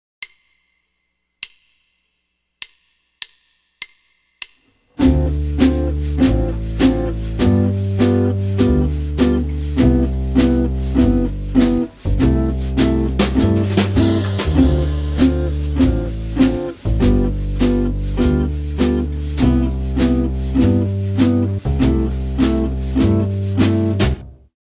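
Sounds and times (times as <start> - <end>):
jazz guitar playing a 2 5 1 progression in C major: 5.0 - 24.4.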